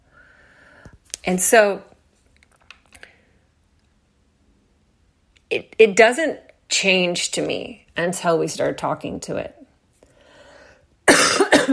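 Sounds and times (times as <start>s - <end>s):
speech: 1.2s - 1.9s, 5.8s - 9.6s
harsh coughs: 11.1s - 11.7s.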